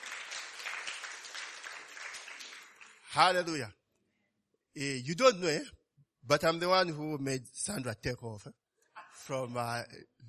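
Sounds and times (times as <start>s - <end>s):
audience applauding: 0.0s - 3.3s
speech: 3.1s - 3.8s, 4.8s - 8.6s, 9.2s - 10.2s.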